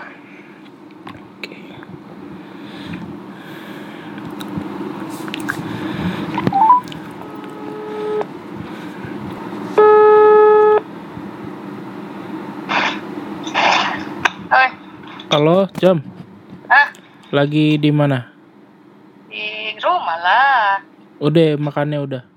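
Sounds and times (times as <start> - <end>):
hum: 0.0 - 22.3
phone ringback tone while calling a friend: 6.4 - 8.3, 9.8 - 10.8
speech: 15.4 - 16.1, 17.3 - 18.3, 20.2 - 22.3.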